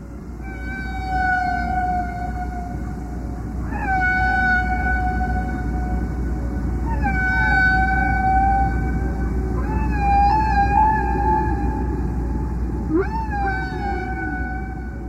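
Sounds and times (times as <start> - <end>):
steady low rumble of ocean noise: 0.0 - 15.0
underwater whale song: 0.0 - 15.0.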